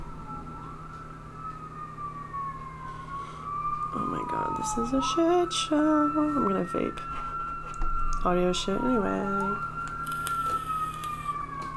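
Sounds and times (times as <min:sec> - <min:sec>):
several emergency sirens wailing: 0:00.0 - 0:11.7
speech: 0:03.9 - 0:07.3, 0:08.2 - 0:09.7.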